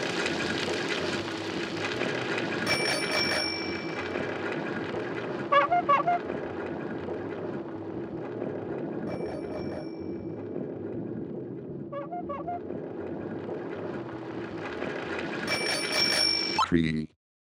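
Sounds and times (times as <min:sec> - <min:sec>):
steady rumble of outdoor noise: 0:00.0 - 0:17.0
bicycle bell ringing: 0:02.6 - 0:04.2, 0:09.1 - 0:10.3, 0:15.5 - 0:16.6
speech: 0:16.7 - 0:17.0.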